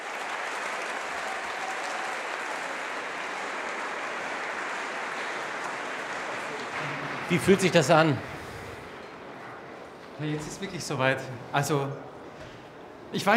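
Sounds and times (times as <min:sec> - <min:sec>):
large audience giving a standing ovation applause: 0:00.0 - 0:09.2
speech: 0:07.3 - 0:08.4, 0:10.2 - 0:12.1, 0:13.1 - 0:13.3.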